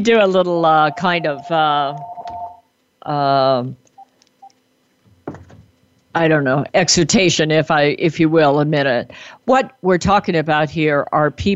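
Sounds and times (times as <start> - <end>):
speech: 0.0 - 2.1, 3.0 - 3.8, 6.1 - 11.5
house phone ringing with warbling electronic tones: 0.7 - 2.6.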